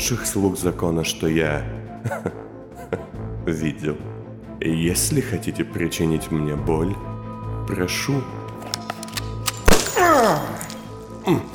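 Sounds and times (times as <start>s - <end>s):
speech: 0.0s - 7.1s, 7.7s - 8.4s, 11.3s - 11.5s
laughter: 2.0s - 3.2s
single sharp pistol shot: 8.7s - 10.4s.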